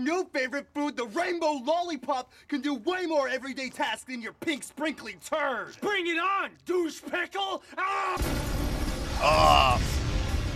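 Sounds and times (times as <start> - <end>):
speech: 0.0 - 8.6, 9.2 - 10.0
cartoonish explosion effect with low rumbling blast: 8.1 - 10.5.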